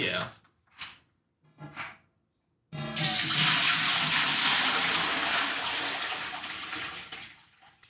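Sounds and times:
speech: 0.0 - 0.4
water gushing into a large pot: 2.8 - 7.8.

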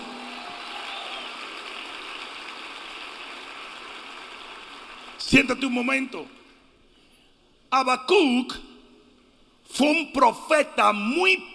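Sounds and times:
audience applauding loudly: 0.0 - 5.3
speech: 5.2 - 6.4, 7.7 - 8.7, 9.7 - 11.5.

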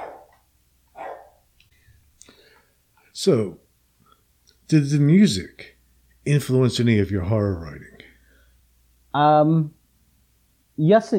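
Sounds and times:
big dog barking: 0.0 - 1.4
speech: 3.2 - 3.6, 4.7 - 5.7, 6.3 - 7.9, 9.2 - 9.8, 10.8 - 11.1.

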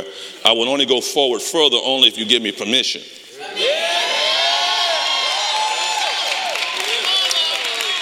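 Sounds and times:
speech: 0.0 - 3.6
church crowd of many voices cheering and whooping: 3.4 - 7.9
people clapping: 4.7 - 7.9.

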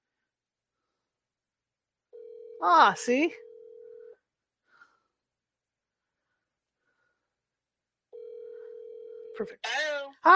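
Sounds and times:
telephone dialing tones: 2.2 - 2.6, 3.4 - 4.1, 8.2 - 9.4
speech: 2.6 - 3.4, 9.4 - 10.3.

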